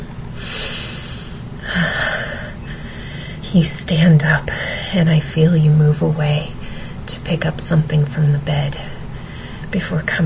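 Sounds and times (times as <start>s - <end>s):
stronger rougher breath: 0.4s - 3.4s
speech: 3.5s - 8.9s, 9.7s - 10.2s.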